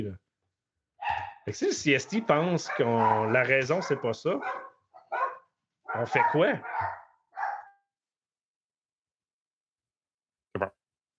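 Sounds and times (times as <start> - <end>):
dogs barking: 1.0 - 7.8
speech: 1.5 - 4.7, 6.0 - 7.0.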